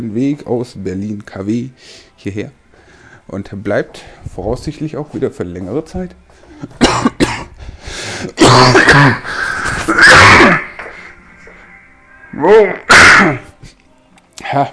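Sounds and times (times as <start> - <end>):
speech: 0.0 - 2.6, 3.3 - 7.1, 12.4 - 13.4, 14.5 - 14.7
raspy throat clearing: 6.7 - 7.5, 8.4 - 10.8, 12.9 - 13.5
loud coughing fit with harsh coughs: 6.7 - 7.6, 8.3 - 10.8, 12.9 - 13.5.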